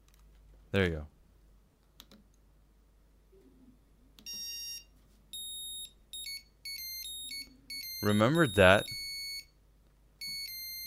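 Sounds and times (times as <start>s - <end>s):
speech: 0.7s - 1.2s, 8.0s - 9.0s
mobile phone ringtone: 4.3s - 9.5s, 10.2s - 10.8s.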